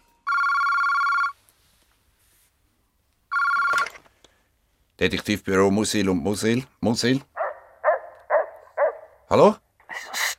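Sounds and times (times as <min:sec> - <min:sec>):
telephone bell ringing in a detective office: 0:00.2 - 0:01.4, 0:03.3 - 0:04.0
speech: 0:05.0 - 0:07.3, 0:09.3 - 0:10.2.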